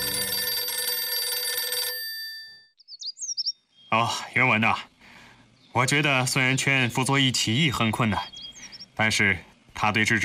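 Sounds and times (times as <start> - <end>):
loud telephone bell ringing: 0.0 - 2.8
speech: 3.9 - 4.9, 5.8 - 8.3, 9.0 - 10.2.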